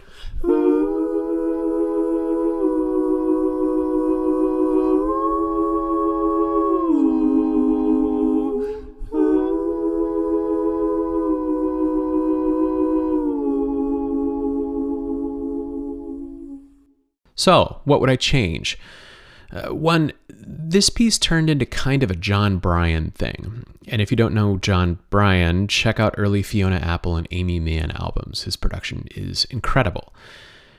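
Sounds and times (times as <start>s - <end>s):
wordless background vocal chords through Leslie speaker emulation: 0.0s - 16.8s
speech: 17.4s - 30.5s.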